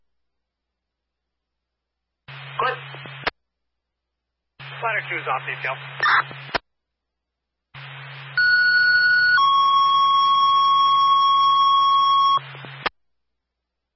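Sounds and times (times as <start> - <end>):
radio static: 2.3 - 3.3, 4.6 - 6.6, 7.8 - 8.4
speech: 2.6 - 2.8, 4.9 - 6.6
loud electronic fire alarm tone over radio: 8.4 - 12.4.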